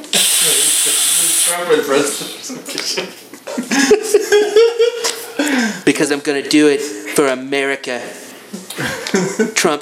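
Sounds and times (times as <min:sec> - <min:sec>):
voice imitating a spray-tan nozzle hissing: 0:00.0 - 0:02.5
speech: 0:01.5 - 0:08.2, 0:08.8 - 0:09.7
laughter: 0:03.4 - 0:05.8, 0:08.7 - 0:09.7.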